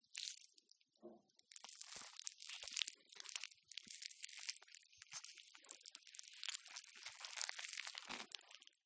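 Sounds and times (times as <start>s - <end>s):
gushing flesh movement: 0.0s - 0.7s, 1.4s - 8.8s.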